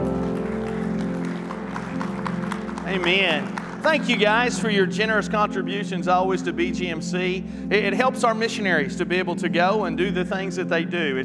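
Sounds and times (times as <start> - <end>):
audience clapping in applause: 0.0 - 4.9
sustained musical tones: 0.0 - 11.2
speech: 2.9 - 11.2.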